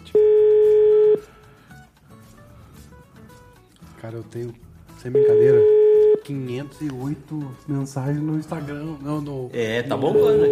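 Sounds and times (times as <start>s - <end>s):
telephone tone as a call is dialed and waits for an answer: 0.1s - 1.3s, 5.2s - 6.2s, 10.1s - 10.5s
speech: 4.1s - 10.5s.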